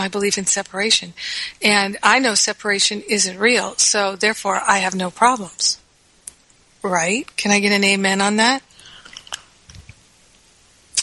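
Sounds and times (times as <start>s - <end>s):
speech: 0.0s - 5.8s, 6.8s - 8.7s
person sipping tea: 8.8s - 10.0s.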